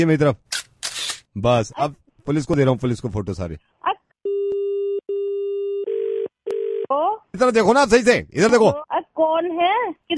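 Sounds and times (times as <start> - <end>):
speech: 0.0 - 0.5, 1.3 - 4.0, 6.9 - 10.1
electronic telephone busy tone: 4.3 - 6.9.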